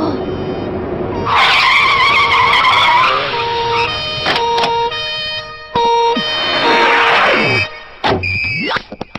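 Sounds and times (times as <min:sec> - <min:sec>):
car engine revving as a car is floored: 0:00.0 - 0:08.1
car tires screeching in an animated scene: 0:00.0 - 0:08.9.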